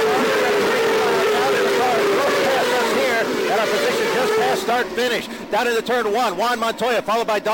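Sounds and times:
race car engines roaring past the start-finish line on the opening lap: 0:00.0 - 0:07.5
dense wash of noise: 0:03.5 - 0:07.5
speech: 0:04.7 - 0:07.5.

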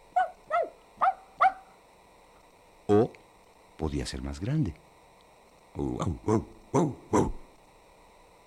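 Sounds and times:
small dog yapping with high-pitched barks: 0:00.1 - 0:01.8
speech: 0:03.8 - 0:04.9, 0:05.8 - 0:07.4.

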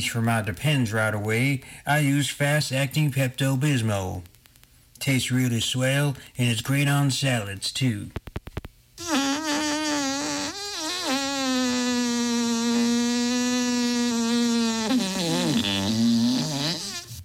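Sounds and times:
speech: 0:00.0 - 0:04.3, 0:05.0 - 0:08.2
long loud juicy fart: 0:09.0 - 0:17.2.

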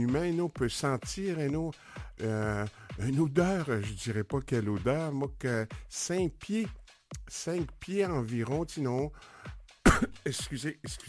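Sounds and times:
speech: 0:00.0 - 0:11.0
throat clearing and coughing: 0:09.8 - 0:10.4.

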